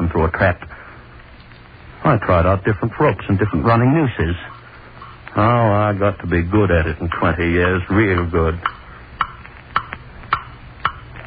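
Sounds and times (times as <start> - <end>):
speech: 0.2 - 0.7, 2.0 - 4.5, 5.3 - 8.8
clock ticking: 7.6 - 11.2.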